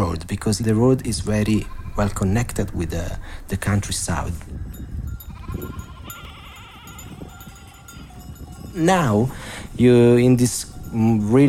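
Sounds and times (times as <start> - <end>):
low rumbling of hooves and movement: 0.0 - 11.4
speech: 0.1 - 4.8, 8.8 - 11.4
large flock of sheep bleating: 1.6 - 2.4, 5.2 - 8.2
faint bell-like clinks: 4.5 - 11.4.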